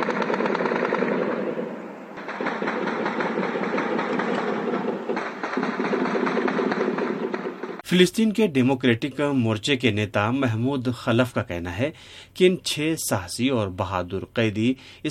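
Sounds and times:
celebratory gunfire shot into the air: 0.0s - 7.8s
speech: 7.9s - 15.0s.

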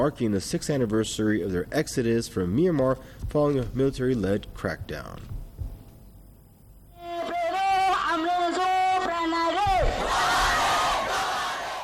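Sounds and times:
speech: 0.0s - 5.4s
many people shouting at a rally: 7.1s - 11.8s
large crowd of refugees chanting at a rally: 9.5s - 11.8s.

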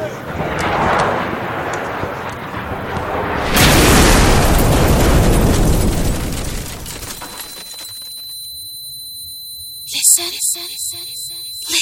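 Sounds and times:
loud explosion: 0.2s - 7.2s
rhythmic beeping pulses: 6.9s - 11.7s
thin high-pitched tone: 7.3s - 11.7s.

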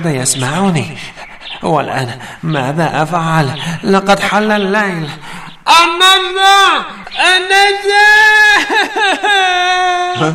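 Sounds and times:
speech: 0.0s - 10.3s
laughter: 7.3s - 10.3s
child crying: 8.1s - 10.3s.

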